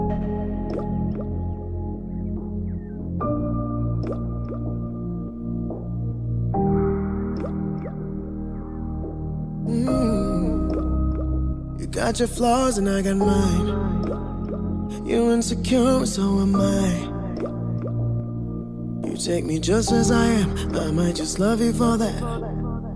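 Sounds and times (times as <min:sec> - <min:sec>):
sustained synth chords in an instrumental pop intro: 0:00.0 - 0:19.1
speech: 0:12.0 - 0:14.3, 0:15.1 - 0:17.1, 0:19.2 - 0:22.6.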